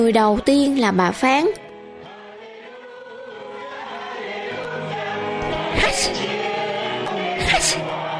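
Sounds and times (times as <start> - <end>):
speech: 0.0 - 1.6, 5.8 - 6.3
steady sustained music: 0.0 - 8.1
person sneezing: 5.7 - 6.3, 7.4 - 7.9.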